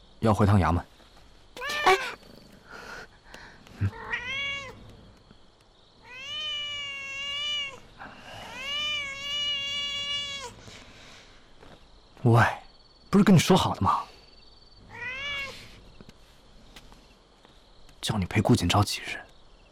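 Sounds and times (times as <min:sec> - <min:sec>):
speech: 0:00.2 - 0:00.9, 0:12.3 - 0:14.1, 0:18.2 - 0:19.3
cat meowing: 0:01.6 - 0:02.2, 0:03.8 - 0:04.8, 0:06.0 - 0:10.6, 0:14.9 - 0:15.7.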